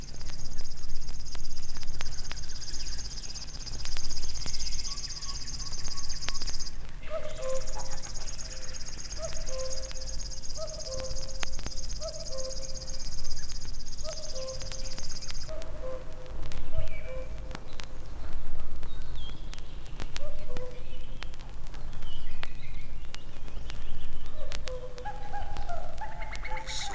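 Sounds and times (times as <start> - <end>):
river warbler dry insect-like buzzing trill: 0.0 - 15.6
softer bird calling in repeated short notes: 0.0 - 26.9.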